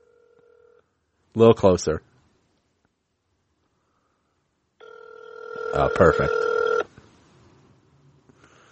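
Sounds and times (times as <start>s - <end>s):
speech: 1.4s - 2.1s, 5.8s - 6.5s
phone ringback tone through a speakerphone: 4.8s - 6.9s.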